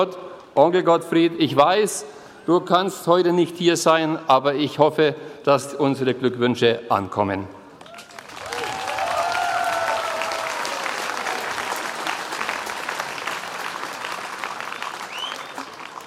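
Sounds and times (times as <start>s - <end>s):
speech: 0.0s - 7.6s
crowd applauding: 7.8s - 16.0s
faint whistles and cheers: 7.9s - 11.5s, 14.6s - 16.0s.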